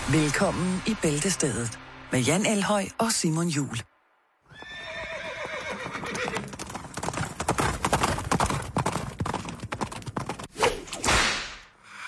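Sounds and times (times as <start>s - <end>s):
speech: 0.1s - 3.9s
loud horse whinny: 4.5s - 6.6s
horses clip-clopping: 4.5s - 10.5s
sharp whip cracks: 10.5s - 11.7s.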